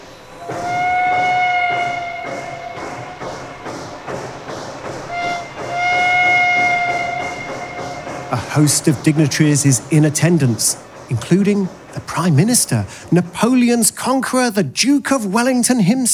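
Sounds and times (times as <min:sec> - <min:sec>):
train rhythmic chugging clatter at a railway station: 0:00.0 - 0:14.5
train horn blasts at a railway station: 0:00.3 - 0:03.7, 0:05.1 - 0:08.7
speech: 0:08.3 - 0:16.1.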